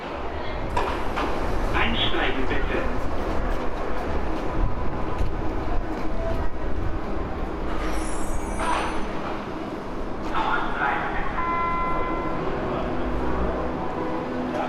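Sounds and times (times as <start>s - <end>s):
subway train rumbling: 0.0s - 14.6s
subway train brake squeal: 7.8s - 9.1s.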